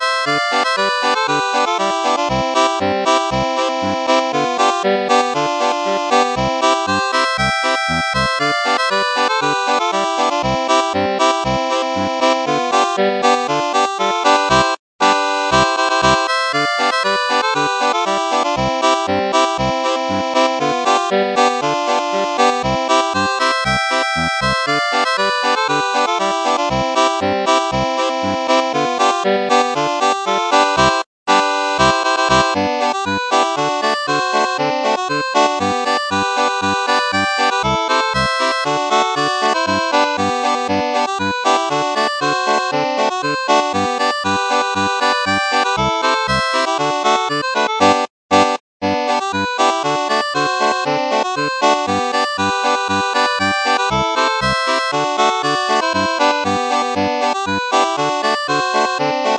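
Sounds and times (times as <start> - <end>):
polka played on accordion, first part for two accordions: 0.0 - 59.3.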